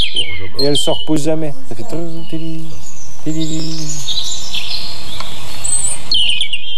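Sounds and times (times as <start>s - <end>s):
European robin singing: 0.0s - 6.7s
speech: 0.2s - 4.1s
low humming tone: 1.2s - 6.2s.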